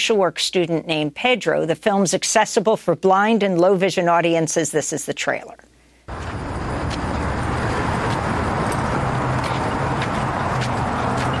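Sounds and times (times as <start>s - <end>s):
speech: 0.0s - 6.4s
bus approaching and rumbling in street traffic: 6.1s - 11.3s
steady dense street traffic: 6.1s - 11.3s.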